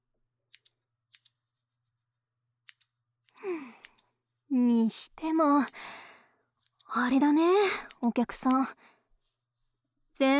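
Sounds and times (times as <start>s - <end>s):
scissors cutting hair around the ear: 0.5s - 1.5s, 2.6s - 4.2s, 5.0s - 8.8s
speech: 4.6s - 6.0s, 6.9s - 8.9s, 10.2s - 10.3s.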